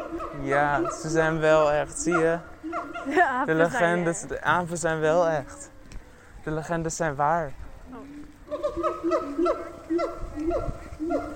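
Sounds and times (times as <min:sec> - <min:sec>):
monkeys in a tree screeching with harsh honking calls: 0:00.0 - 0:03.2, 0:08.5 - 0:11.3
speech: 0:00.4 - 0:05.7, 0:06.4 - 0:08.2, 0:08.8 - 0:11.3
laughter: 0:03.0 - 0:04.2.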